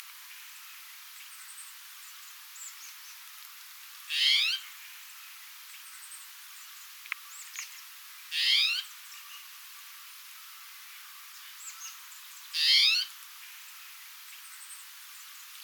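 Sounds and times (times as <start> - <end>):
Spotted Towhee Pipilo maculatus oregonus calling: 4.1 - 4.6, 12.6 - 13.1.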